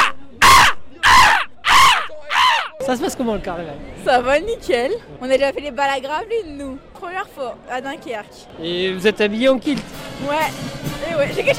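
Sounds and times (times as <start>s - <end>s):
person imitating a seagull's cry during a carnival: 0.0s - 2.8s
speech: 2.9s - 11.5s.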